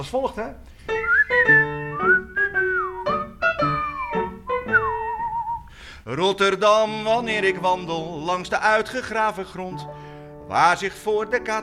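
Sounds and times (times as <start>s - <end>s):
speech: 0.0s - 2.2s, 6.1s - 11.6s
audience whistling a melody: 0.9s - 5.7s.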